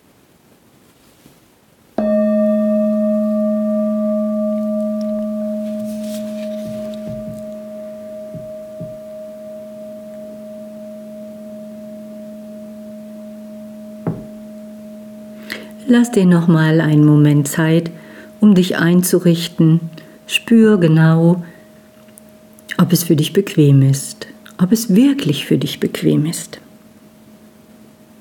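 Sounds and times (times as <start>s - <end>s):
singing bowl struck to open a meditation, ringing: 2.0s - 22.7s
soft tap: 5.1s - 7.6s, 8.3s - 9.1s, 14.0s - 14.4s
speech: 15.9s - 21.5s, 22.9s - 26.6s.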